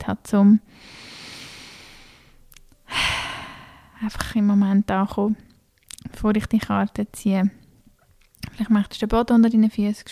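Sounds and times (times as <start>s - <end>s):
speech: 0.1s - 1.0s, 4.0s - 5.5s, 6.1s - 7.6s, 8.4s - 10.1s
deep breath: 0.7s - 4.0s.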